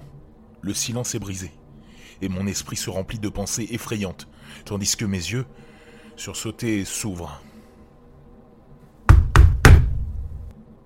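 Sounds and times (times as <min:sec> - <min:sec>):
speech: 0:00.6 - 0:01.6, 0:02.2 - 0:07.5
fist knocking on a window pane: 0:09.1 - 0:10.2.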